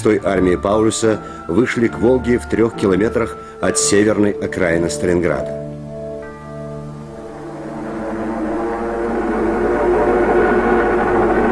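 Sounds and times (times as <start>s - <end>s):
speech: 0.0s - 5.7s
aircraft engines droning overhead: 5.5s - 11.4s.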